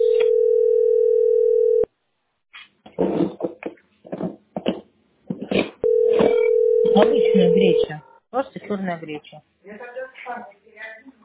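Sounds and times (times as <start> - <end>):
electronic telephone line tone while a call is placed: 0.0 - 1.9, 5.8 - 7.9
speech: 8.0 - 9.5.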